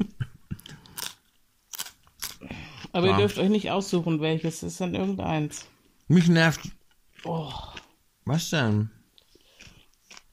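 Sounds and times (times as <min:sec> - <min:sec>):
raw white cabbage being bitten and chewed: 0:00.7 - 0:03.0, 0:09.2 - 0:10.3
speech: 0:02.9 - 0:09.0.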